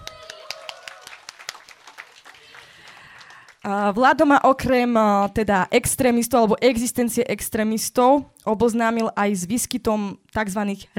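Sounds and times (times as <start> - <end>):
audience applause: 0.0 - 3.6
speech: 3.6 - 10.9.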